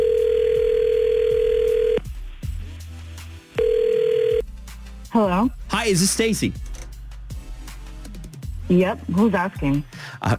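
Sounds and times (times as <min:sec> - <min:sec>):
outgoing phone call ringback tones through a handset line: 0:00.0 - 0:02.0, 0:03.6 - 0:04.4
speech: 0:05.2 - 0:06.6, 0:08.7 - 0:10.3.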